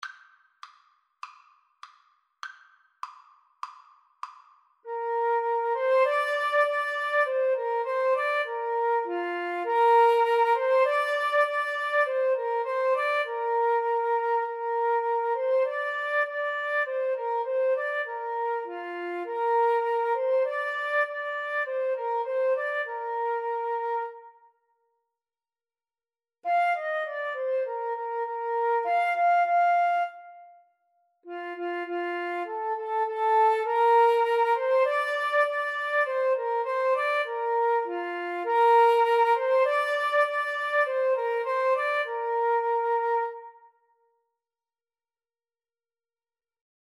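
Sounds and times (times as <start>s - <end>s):
flute and clarinet duet: 4.9s - 24.4s, 26.5s - 43.8s.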